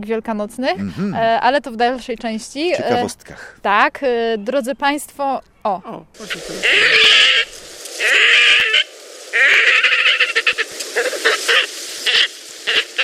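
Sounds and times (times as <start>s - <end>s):
speech: 0.0s - 8.6s
pond bird giving pig-like squeals: 6.2s - 13.0s.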